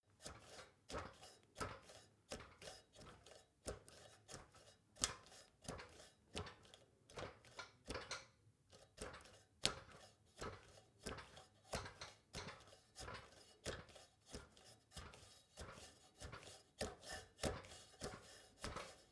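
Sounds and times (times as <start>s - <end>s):
soft footsteps on a metal step ladder: 0.2s - 19.1s.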